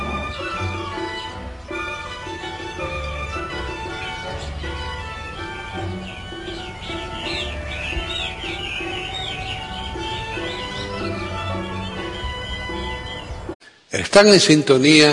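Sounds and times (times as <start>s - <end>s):
many small caged birds chirping at a bird market in Hong Kong: 0.0s - 13.9s
speech: 14.1s - 15.1s.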